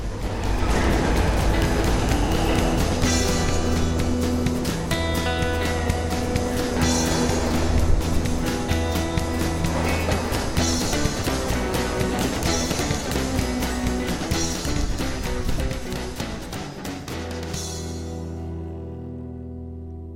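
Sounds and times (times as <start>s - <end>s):
freight train rolling at night heard from inside an empty boxcar: 0.0s - 17.8s.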